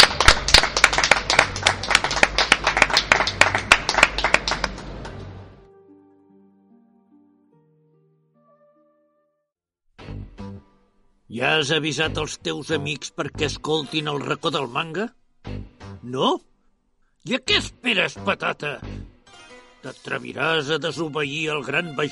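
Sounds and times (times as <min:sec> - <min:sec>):
crowd applauding at a manga convention in Barcelona: 0:00.0 - 0:05.5
speech: 0:11.4 - 0:16.5, 0:17.2 - 0:19.1, 0:19.8 - 0:22.0.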